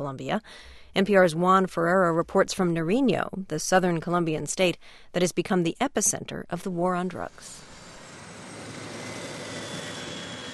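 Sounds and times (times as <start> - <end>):
speech: 0.0 - 7.7
faint whine of crop-fumigation plane engines: 7.1 - 10.5
crop-fumigation plane engines droning: 7.4 - 10.5.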